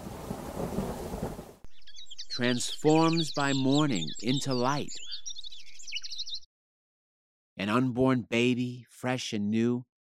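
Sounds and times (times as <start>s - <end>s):
deep rolling thunder: 0.0s - 1.6s
speech: 2.4s - 5.1s, 7.7s - 9.9s.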